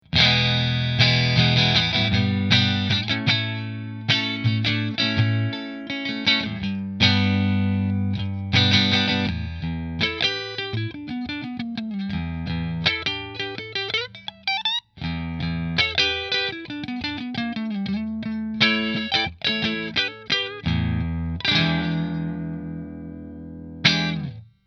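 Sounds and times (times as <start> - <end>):
electric guitar on neck mini position 2: 0.0 - 24.4.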